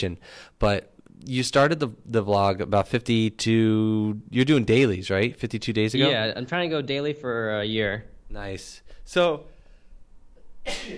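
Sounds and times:
speech: 0.0s - 9.5s, 10.6s - 10.9s
hiss: 0.0s - 10.9s
sneeze: 10.6s - 10.9s.

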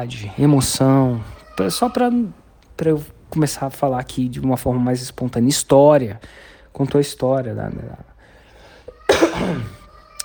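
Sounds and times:
speech: 0.0s - 8.1s, 9.4s - 9.8s
harsh cough: 8.9s - 9.8s.

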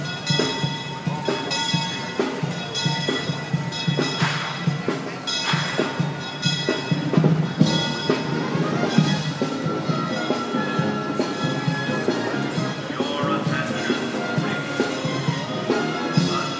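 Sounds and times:
band music: 0.0s - 16.5s
crowd chatter in a busy town square: 0.0s - 16.5s.

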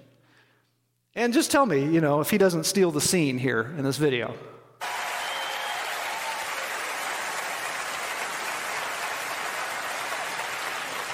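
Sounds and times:
speech: 1.2s - 4.6s
large crowd applauding in a standing ovation: 4.8s - 11.1s.

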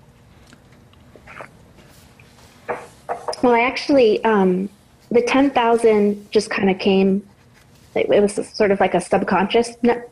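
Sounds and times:
quiet hum: 0.0s - 10.1s
faint wet mouth clicks: 1.2s - 1.6s
slurping gulp of water: 1.2s - 1.6s
speech: 3.4s - 7.3s, 8.0s - 10.1s.

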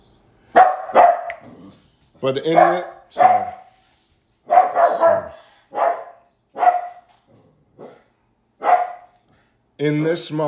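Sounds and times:
dog barking: 0.5s - 1.4s, 2.5s - 3.8s, 4.5s - 7.1s, 7.8s - 9.2s
speech: 2.2s - 3.4s, 9.8s - 10.4s.

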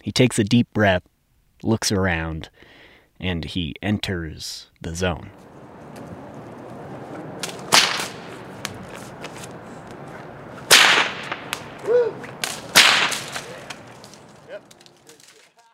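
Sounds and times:
speech: 0.1s - 5.4s
whip cracking: 7.3s - 15.4s.

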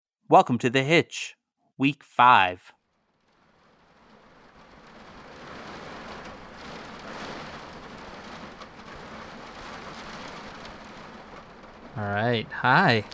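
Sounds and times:
speech: 0.3s - 2.8s, 12.0s - 13.1s
dense rain on surfaces: 2.3s - 13.1s
faint low thunder rumble: 3.1s - 13.1s.

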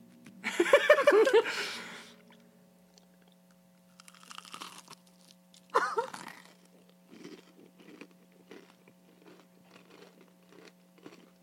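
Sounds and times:
low steady hum: 0.0s - 11.4s
laughter: 0.4s - 2.0s
person crunching a crispy fried chicken tender: 3.0s - 11.4s
chewing: 4.0s - 11.4s.

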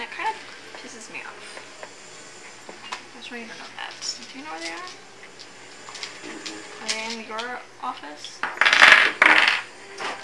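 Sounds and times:
speech: 3.3s - 5.1s, 6.2s - 10.2s
dice clattering on a hard table: 8.5s - 9.7s.

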